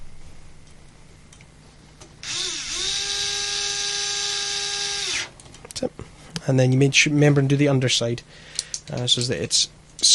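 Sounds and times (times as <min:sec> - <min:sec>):
power driver screwing a bolt in: 0:02.1 - 0:05.5
speech: 0:05.8 - 0:10.1.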